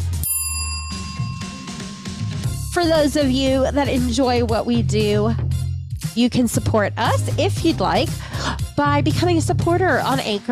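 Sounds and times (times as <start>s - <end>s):
bright notification-style bell ding: 0.2s - 3.9s
speech: 2.8s - 5.4s, 6.2s - 10.5s.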